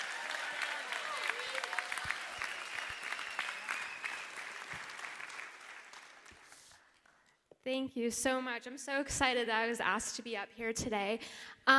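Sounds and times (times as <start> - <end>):
scattered cheers and voices: 0.0 - 4.0
church congregation applauding during a Sunday service: 0.0 - 7.2
speech: 7.7 - 11.7.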